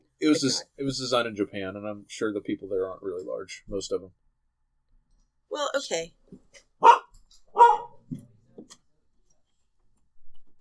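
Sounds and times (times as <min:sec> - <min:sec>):
speech: 0:00.2 - 0:04.2, 0:05.5 - 0:07.0
female dog barking: 0:06.8 - 0:08.0.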